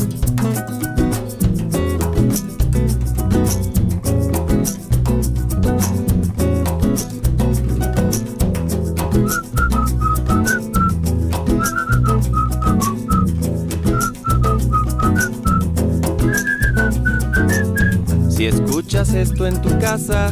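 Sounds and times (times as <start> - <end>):
bass accompaniment: 0.0 - 20.2
steadily strummed guitar: 0.0 - 20.2
person whistling a bright melody: 9.2 - 18.0
speech: 19.0 - 20.2.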